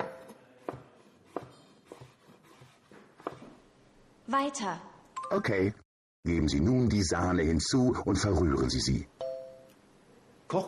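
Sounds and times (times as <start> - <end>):
knife cutting zucchini into strips: 0.0 - 3.5
speech: 4.3 - 9.1.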